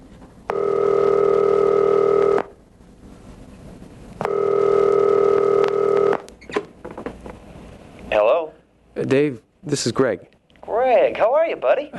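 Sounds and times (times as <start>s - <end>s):
long steady electronic telephone ringing tone: 0.5s - 2.5s, 4.2s - 6.2s
speech: 9.1s - 10.3s, 10.9s - 11.9s.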